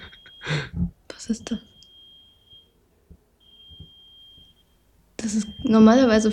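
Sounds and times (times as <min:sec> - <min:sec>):
electronic alarm beeping in Dresden: 0:00.0 - 0:00.5, 0:01.6 - 0:02.8, 0:03.4 - 0:06.3
speech: 0:00.6 - 0:01.7, 0:05.2 - 0:06.3.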